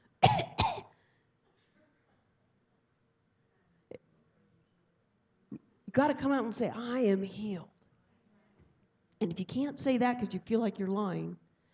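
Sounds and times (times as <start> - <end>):
person coughing: 0.2 - 1.0
speech: 6.0 - 7.7, 9.2 - 11.4.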